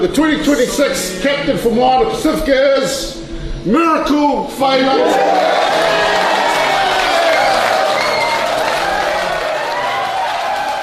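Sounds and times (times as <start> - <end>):
speech: 0.0 - 6.1
rugby team players cheering and shouting: 4.9 - 10.8
rugby team players clapping: 5.1 - 10.8.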